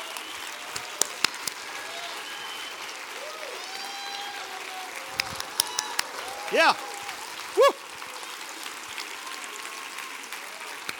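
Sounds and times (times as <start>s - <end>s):
church audience clapping: 0.0s - 10.9s
faint cheering: 0.0s - 10.9s
speech: 6.5s - 6.9s.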